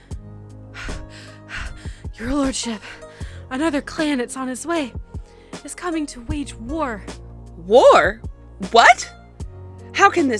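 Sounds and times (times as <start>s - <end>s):
messenger panting out of breath: 0.8s - 2.2s
speech: 2.2s - 5.0s, 5.6s - 9.1s, 10.0s - 10.3s.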